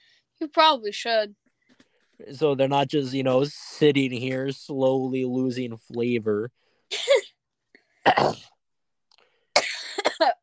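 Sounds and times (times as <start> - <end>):
speech: 0.4 - 1.4, 2.2 - 7.3, 8.0 - 8.5
person coughing: 6.9 - 7.3, 8.0 - 8.5, 9.6 - 10.4.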